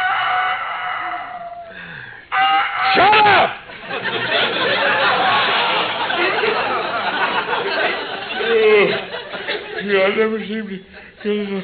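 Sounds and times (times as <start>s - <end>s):
rooster crowing: 0.0s - 3.1s
laughter: 2.9s - 11.6s
speech: 10.1s - 11.6s.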